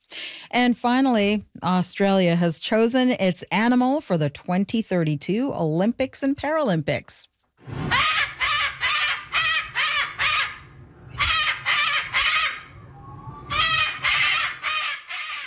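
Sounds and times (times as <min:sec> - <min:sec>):
speech: 0:00.5 - 0:08.1
cockatoo calling in raucous screeches: 0:07.9 - 0:15.4.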